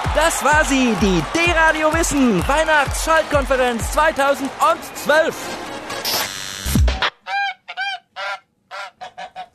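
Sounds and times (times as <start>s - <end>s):
speech: 0.2s - 6.2s
goose from Lower Saxony honking: 7.0s - 9.5s.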